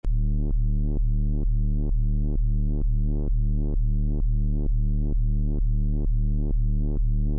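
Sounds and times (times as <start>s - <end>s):
techno on a Minitaur bass synthesizer: 0.1s - 7.3s.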